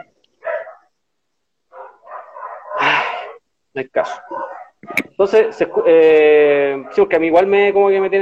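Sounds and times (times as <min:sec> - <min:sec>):
dog barking: 0:00.4 - 0:01.0, 0:01.7 - 0:03.4, 0:04.0 - 0:07.4
speech: 0:03.8 - 0:08.2.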